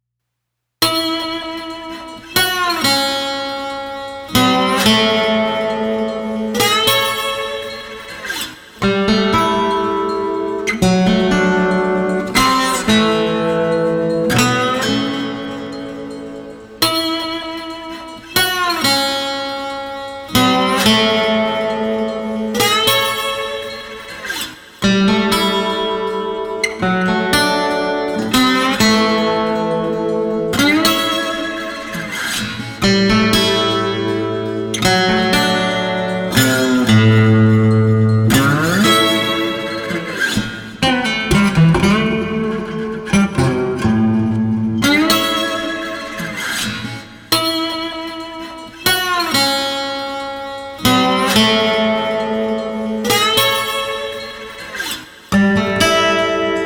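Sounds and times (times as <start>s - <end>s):
melancholy slide guitar melody at 120 bpm: 0.8s - 56.6s.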